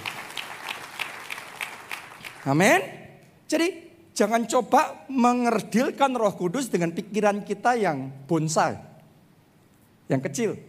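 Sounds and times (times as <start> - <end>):
crowd applauding: 0.0 - 2.6
speech: 2.4 - 8.9, 10.1 - 10.6.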